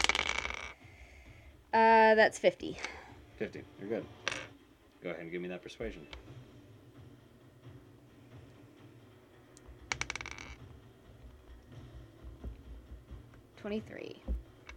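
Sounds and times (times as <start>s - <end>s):
dice rolling on a table for a tabletop role-playing game: 0.0s - 0.8s, 4.2s - 4.5s, 9.6s - 10.6s
speech: 1.8s - 4.2s, 5.0s - 6.3s, 13.6s - 14.3s.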